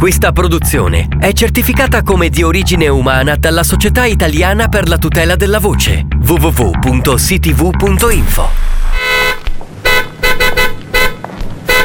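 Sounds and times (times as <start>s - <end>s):
speech: 0.0s - 8.8s
car horn honking in short loud blasts: 8.9s - 11.8s.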